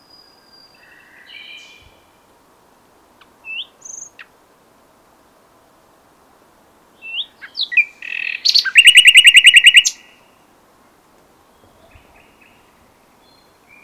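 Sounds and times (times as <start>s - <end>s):
Common nightingale Luscinia megarhynchos song: 0.0s - 4.5s, 6.7s - 10.5s, 11.4s - 13.8s.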